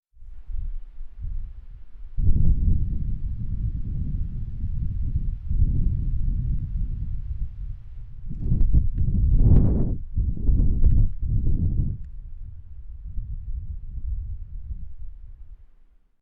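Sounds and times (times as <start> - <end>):
wind on video camera mic: 0.2 - 15.8.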